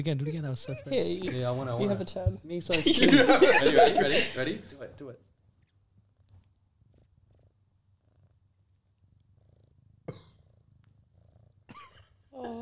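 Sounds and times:
speech: 0.0s - 5.3s
laughter: 2.7s - 4.7s
cat purring: 5.6s - 12.6s.

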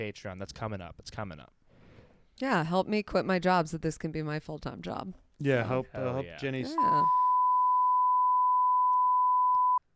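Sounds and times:
speech: 0.0s - 1.6s, 2.4s - 7.2s
censor bleep tone: 6.7s - 9.8s.

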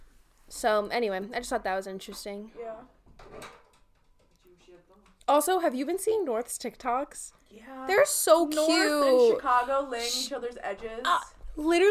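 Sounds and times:
speech: 0.6s - 3.6s, 4.7s - 11.9s
door opening and closing: 3.0s - 4.4s.

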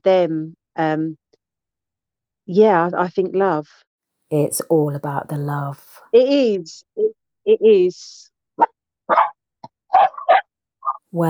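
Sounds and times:
speech: 0.0s - 1.2s, 2.5s - 9.2s
dog barking in sharp woofs: 9.1s - 11.0s.

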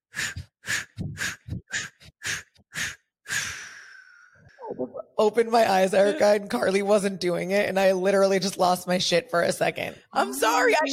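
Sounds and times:
forceful breaths out through the mouth during a meditation breathing exercise: 0.1s - 4.6s
speech: 4.8s - 10.9s.

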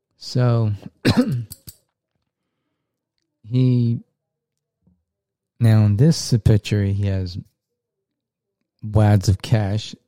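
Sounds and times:
speech: 0.2s - 1.6s, 3.5s - 4.1s, 5.6s - 7.5s, 8.8s - 10.0s
person coughing from the smell of a Sharpie marker: 1.0s - 1.7s.

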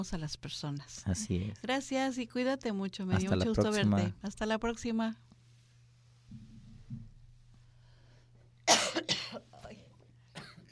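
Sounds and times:
speech: 0.0s - 5.3s
low thumps: 6.2s - 7.4s
person coughing: 8.7s - 10.7s.

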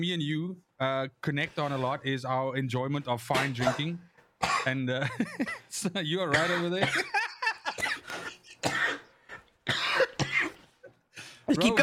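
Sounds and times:
speech: 0.0s - 7.2s, 11.6s - 11.8s
person coughing: 3.3s - 4.8s, 6.3s - 11.8s.

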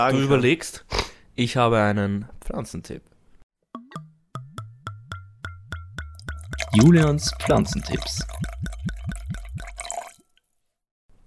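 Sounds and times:
speech: 0.0s - 3.1s, 6.8s - 8.8s
liquid glugging from a bottle: 5.4s - 10.6s.

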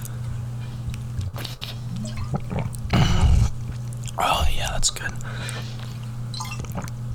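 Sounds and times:
low steady hum: 0.0s - 7.1s
person sipping and gulping water: 1.3s - 4.1s, 6.4s - 7.0s.

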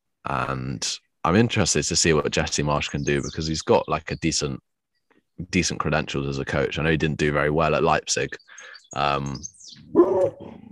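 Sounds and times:
speech: 0.3s - 4.7s, 5.4s - 10.4s
dog barking: 9.9s - 10.5s.

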